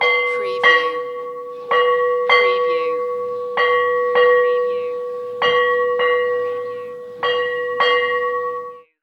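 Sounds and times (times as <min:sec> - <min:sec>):
vintage school bell ringing: 0:00.0 - 0:09.0.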